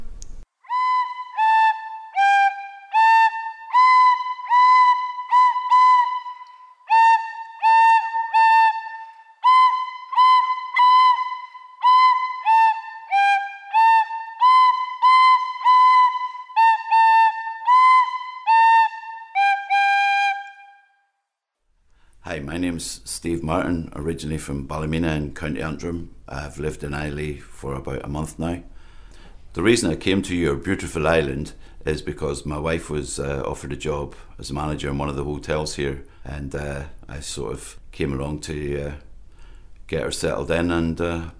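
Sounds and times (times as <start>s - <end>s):
seven-year-old child playing a simple hesitant tune on a whistle: 0.6s - 21.1s
speech: 22.3s - 28.7s, 29.5s - 39.1s, 39.9s - 41.3s.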